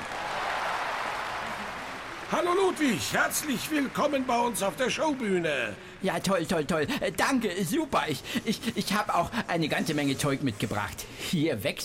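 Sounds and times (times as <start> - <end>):
audience applause: 0.0 - 8.2
speech: 2.3 - 11.8.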